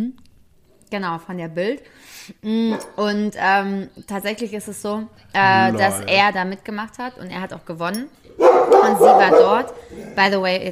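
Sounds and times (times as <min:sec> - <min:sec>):
speech: 0:00.9 - 0:10.7
dog barking and yipping: 0:08.4 - 0:09.9.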